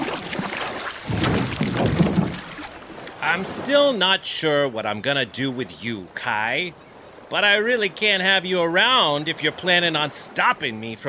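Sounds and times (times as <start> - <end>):
wind noise: 0.0 - 3.6
gentle splashing of water against a small boat: 0.0 - 11.0
speech: 3.3 - 11.0.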